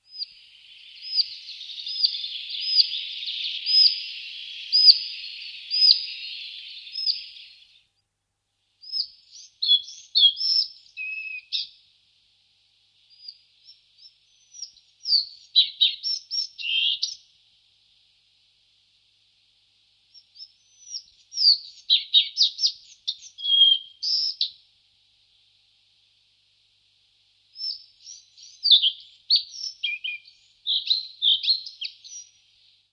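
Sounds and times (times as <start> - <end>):
collared flycatcher singing: 0.0 - 7.9, 8.8 - 11.8, 13.1 - 17.3, 20.2 - 24.6, 27.6 - 32.7.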